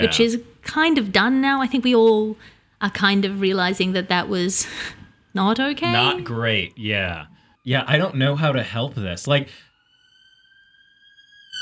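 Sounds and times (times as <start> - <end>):
speech: 0.0 - 9.7
passing emergency vehicle siren: 4.6 - 11.6
laughter: 5.9 - 7.0.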